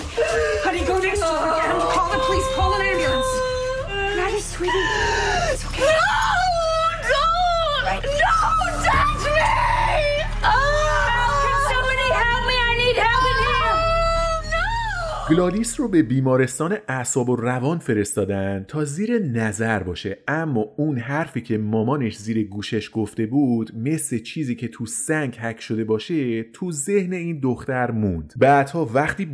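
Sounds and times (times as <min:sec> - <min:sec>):
woman screaming hysterically in high-pitched bursts: 0:00.0 - 0:15.3
steady low rumble of noise: 0:00.0 - 0:16.2
speech: 0:00.2 - 0:03.4, 0:15.3 - 0:29.3.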